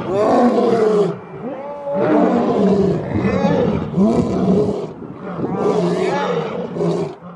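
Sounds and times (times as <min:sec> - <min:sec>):
lions roaring in a zoo: 0:00.0 - 0:07.3.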